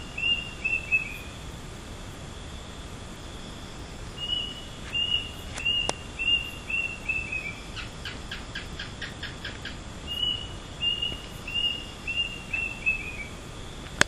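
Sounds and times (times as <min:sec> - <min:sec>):
unidentified bird calling at midnight in Penang: 0:00.0 - 0:01.3, 0:04.2 - 0:07.9, 0:08.8 - 0:13.4
newt kek-kek-kek calls: 0:00.0 - 0:01.6, 0:03.4 - 0:13.8
background hiss: 0:00.0 - 0:14.0.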